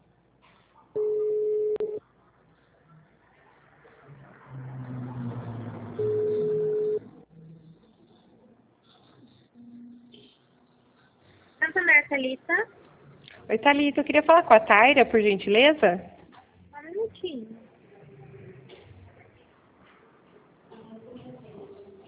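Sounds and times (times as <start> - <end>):
ringback tone of an outgoing phone call to a bank: 1.0 - 2.0, 6.0 - 7.1
speech: 12.1 - 12.8, 13.5 - 16.1.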